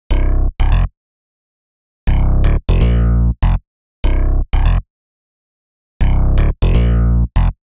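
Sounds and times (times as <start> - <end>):
C minor freak bass: 0.1 - 0.9, 2.1 - 4.8, 6.0 - 7.6.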